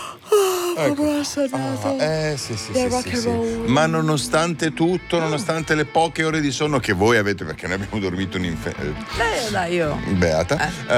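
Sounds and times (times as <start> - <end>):
voiced yawn with stretched wavering moans: 0.0 - 1.4
speech: 0.8 - 10.9.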